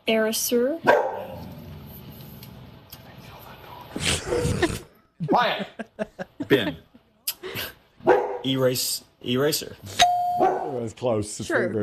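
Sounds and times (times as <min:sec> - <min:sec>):
speech: 0:00.1 - 0:01.0, 0:04.0 - 0:06.9, 0:08.4 - 0:11.8
dog barking: 0:00.8 - 0:01.4, 0:08.0 - 0:08.5, 0:10.4 - 0:10.8
laughter: 0:04.0 - 0:07.8.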